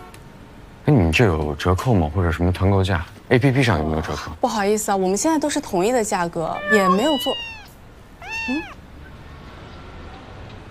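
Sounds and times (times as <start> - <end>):
speech: 0.9 - 7.5, 8.5 - 8.8
cat meowing: 6.4 - 8.9.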